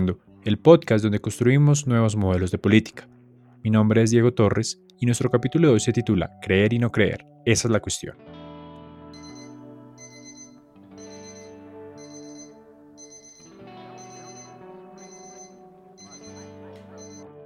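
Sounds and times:
speech: 0.0 - 8.4
phone ringing with bright high beeping alerts: 9.2 - 17.3
loud continuous musical bed: 9.2 - 17.4.

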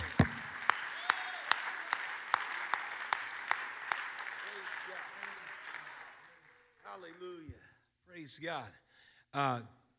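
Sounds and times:
audience clapping hands in a rhythmic beat: 0.0 - 7.5
speech: 8.2 - 9.8.

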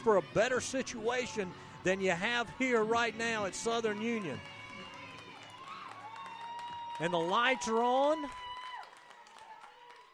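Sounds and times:
speech: 0.0 - 4.5, 7.0 - 8.4
grandstand crowd cheering: 0.0 - 10.1
grandstand crowd handclaps: 3.9 - 10.1.

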